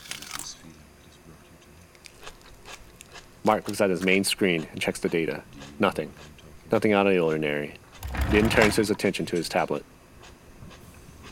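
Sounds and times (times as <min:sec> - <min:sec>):
crunchy bite into a fried chicken sandwich: 0:00.0 - 0:00.6
chewing: 0:01.6 - 0:06.5, 0:10.2 - 0:11.3
speech: 0:03.5 - 0:09.9.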